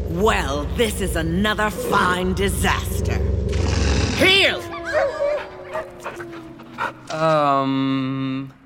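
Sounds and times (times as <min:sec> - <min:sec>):
speech: 0:00.2 - 0:03.3, 0:04.2 - 0:05.2, 0:07.2 - 0:08.6
wolf long drawn-out whimpering whine: 0:04.2 - 0:07.3
wolves panting in short breathy bursts: 0:04.8 - 0:07.1.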